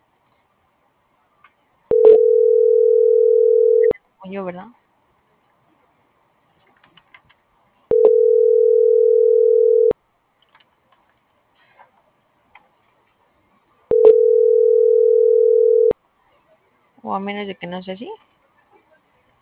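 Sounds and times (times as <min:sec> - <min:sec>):
telephone dial tone while a number is redialed: 0:01.9 - 0:04.0, 0:07.9 - 0:09.9, 0:13.9 - 0:15.9
speech: 0:04.3 - 0:04.8, 0:17.1 - 0:18.3.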